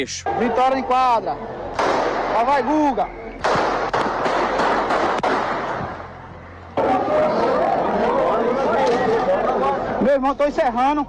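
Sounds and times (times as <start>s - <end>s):
speech: 0.0s - 3.5s, 10.1s - 11.0s
crowd noise and chatter: 0.0s - 11.0s
gunshot cracks at a sports court: 1.7s - 6.2s.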